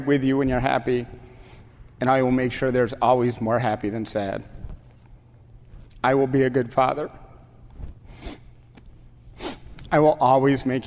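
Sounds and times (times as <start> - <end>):
speech: 0.0 - 1.2, 2.0 - 4.6, 6.0 - 7.2, 9.9 - 10.8
nasal sniffs while reciting wedding vows: 8.0 - 8.6, 9.3 - 9.8.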